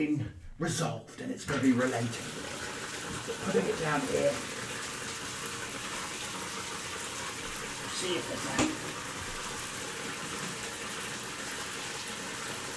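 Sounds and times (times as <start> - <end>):
speech: 0.0 - 4.6, 8.0 - 9.0
tap water pouring into a bathtub: 0.7 - 12.7
knock or splash: 8.5 - 9.0.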